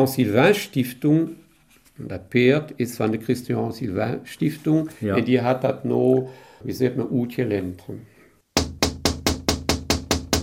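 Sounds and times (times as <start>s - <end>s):
speech: 0.0s - 1.4s, 2.0s - 8.1s
knocking on a door: 8.6s - 10.4s.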